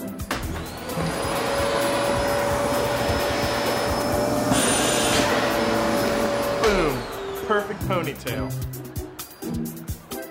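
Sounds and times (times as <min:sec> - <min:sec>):
vacuum cleaner running: 0:00.1 - 0:10.0
speech: 0:07.6 - 0:08.8.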